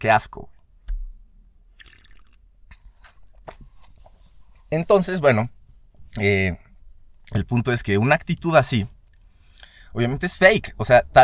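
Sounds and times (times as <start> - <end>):
speech: 0.0 - 0.6, 4.7 - 6.6, 7.3 - 9.0, 9.9 - 11.2
wet mouth clicks: 1.8 - 3.2
sipping coffee: 1.8 - 3.3.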